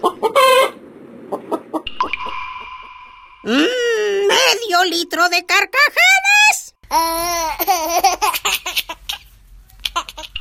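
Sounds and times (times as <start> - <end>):
chicken clucking: 0.0 - 1.9
speech: 3.4 - 3.8, 4.7 - 6.3, 6.9 - 9.0.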